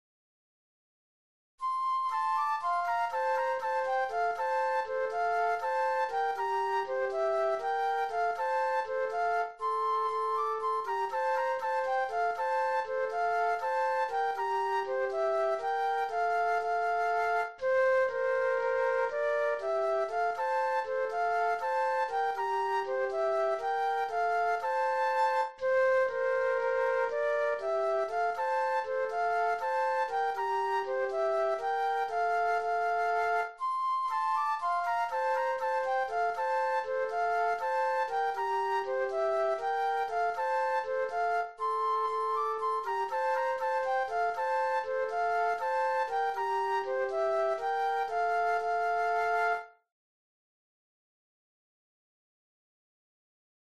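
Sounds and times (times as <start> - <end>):
flute duet: 1.6 - 49.9.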